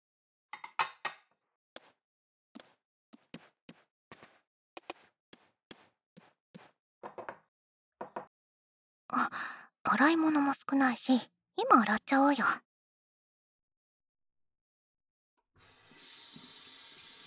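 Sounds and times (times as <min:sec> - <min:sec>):
dishes and cutlery clattering as they are cleared and stacked: 0:00.6 - 0:01.3
speech: 0:09.9 - 0:12.7.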